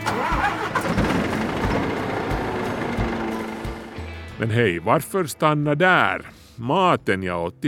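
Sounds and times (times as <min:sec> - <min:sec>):
heavy diesel engine cranking and idling: 0:00.0 - 0:04.4
speech: 0:04.4 - 0:07.6.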